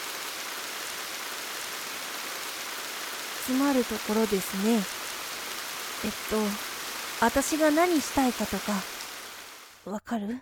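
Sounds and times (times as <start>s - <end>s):
steady dense rain falling: 0.0s - 9.9s
speech: 3.4s - 5.0s, 6.0s - 9.0s, 9.8s - 10.4s.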